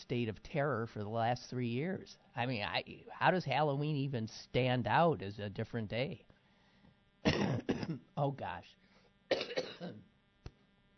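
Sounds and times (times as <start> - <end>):
speech: 0.0 - 6.3, 7.2 - 10.0
harsh coughing fit: 7.2 - 8.1, 9.3 - 10.0.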